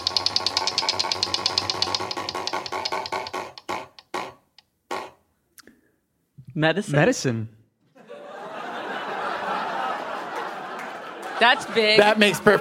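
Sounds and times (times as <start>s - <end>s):
prize wheel pointer ticking during a quiz game: 0.0s - 4.2s
speech: 6.6s - 7.6s, 11.4s - 12.5s
laughter: 7.9s - 12.5s.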